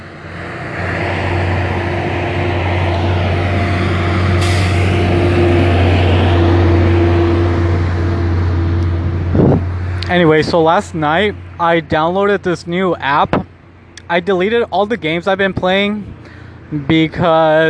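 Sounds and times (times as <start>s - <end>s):
large truck engine rumbling by: 0.0s - 17.6s
truck air brakes hissing: 4.2s - 5.4s
speech: 10.1s - 13.4s, 14.1s - 17.6s.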